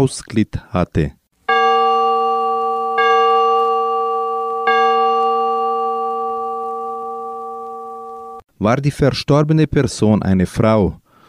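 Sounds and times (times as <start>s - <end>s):
speech: 0.0s - 1.2s, 8.6s - 11.0s
large church bell tolling: 1.5s - 8.4s.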